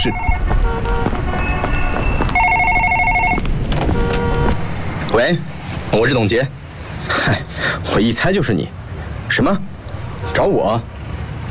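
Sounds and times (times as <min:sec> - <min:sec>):
speech: 0:00.0 - 0:00.4, 0:05.2 - 0:06.6, 0:07.2 - 0:09.6, 0:10.4 - 0:10.9
steady rushing noise: 0:00.0 - 0:11.5
office telephone ringing with buzzing electronic tones: 0:02.4 - 0:03.4.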